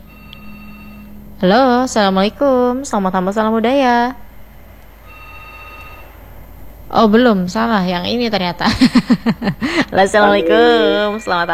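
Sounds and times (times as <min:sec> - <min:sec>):
electronic ringing of a telephone line while a call is being placed: 0:00.0 - 0:01.2, 0:05.0 - 0:06.3
low hum: 0:00.0 - 0:11.5
speech: 0:01.4 - 0:04.2, 0:06.9 - 0:11.5
laughter: 0:08.7 - 0:11.2.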